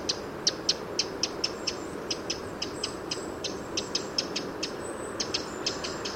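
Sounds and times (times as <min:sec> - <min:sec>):
Eurasian wren Troglodytes troglodytes giving sharp high ticking calls: 0:00.0 - 0:06.1.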